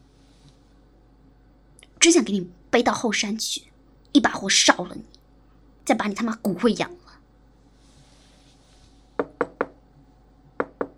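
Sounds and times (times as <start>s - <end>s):
speech: 2.0s - 5.2s, 5.9s - 7.0s
visitor knocking on a door: 9.2s - 9.8s, 10.6s - 10.9s.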